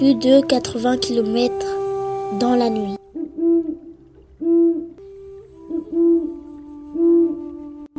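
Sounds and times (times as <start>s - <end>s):
speech: 0.0s - 3.0s
owl hooting: 2.2s - 5.0s, 5.7s - 7.6s.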